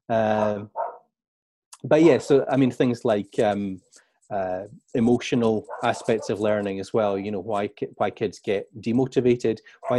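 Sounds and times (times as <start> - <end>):
speech: 0.1 - 0.8, 1.8 - 9.9
dog barking: 0.4 - 1.0, 5.7 - 6.4.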